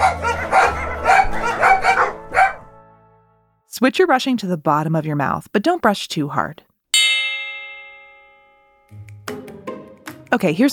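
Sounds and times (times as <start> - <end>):
several dogs barking and yipping: 0.0 - 2.7
speech: 3.8 - 6.7, 10.3 - 10.7.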